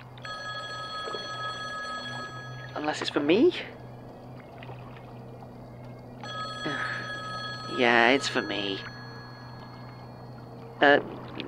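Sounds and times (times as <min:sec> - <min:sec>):
payphone ringing with a steady electronic tone: 0:00.2 - 0:04.1, 0:06.2 - 0:10.8
speech: 0:02.8 - 0:03.8, 0:07.8 - 0:08.9, 0:10.8 - 0:11.2.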